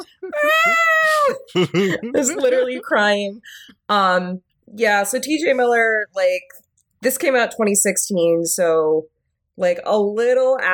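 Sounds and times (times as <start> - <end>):
laughter: 0.0 - 3.1
person imitating a panicked yowling cat dangling off a boat: 0.2 - 1.4
speech: 1.5 - 10.7.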